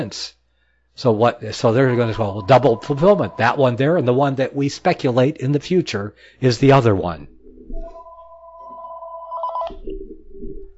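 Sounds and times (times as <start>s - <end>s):
speech: 0.0s - 0.4s, 1.0s - 8.0s
telephone ringing with an incoming call: 1.8s - 4.1s, 8.0s - 9.7s.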